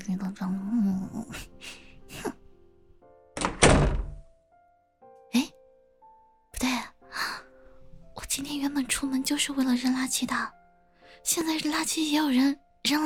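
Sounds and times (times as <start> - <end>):
speech: 0.1 - 1.8, 8.9 - 10.6, 11.3 - 13.0
door closing on arriving home: 3.4 - 4.3.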